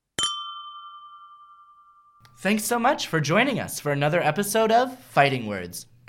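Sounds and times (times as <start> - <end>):
two glasses clinking in a toast: 0.2 - 2.3
speech: 2.4 - 6.0.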